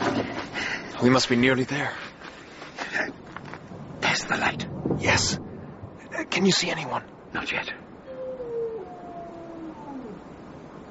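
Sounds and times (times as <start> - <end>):
faint hiss: 0.0 - 10.8
speech: 1.0 - 2.1, 4.1 - 5.4, 6.2 - 7.8
hound howling on the moor: 8.0 - 10.8.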